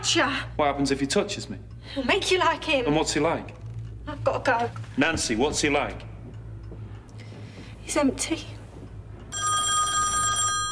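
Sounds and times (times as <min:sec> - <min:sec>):
speech: 0:00.0 - 0:06.1, 0:07.9 - 0:08.6
low hum: 0:00.0 - 0:10.7
old-style telephone bell ringing: 0:09.3 - 0:10.7.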